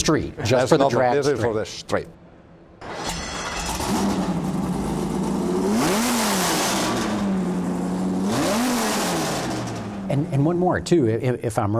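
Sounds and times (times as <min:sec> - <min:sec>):
speech: 0:00.1 - 0:02.2, 0:10.2 - 0:11.7
V10 engine of a drag-racing Challenger starting, idling and revving: 0:02.9 - 0:10.6.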